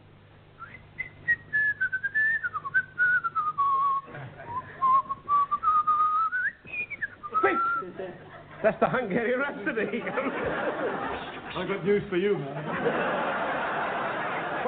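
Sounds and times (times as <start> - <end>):
person whistling a wandering melody: 0.6 - 7.9
laughter: 4.0 - 4.9, 7.4 - 14.6
speech: 8.0 - 13.4.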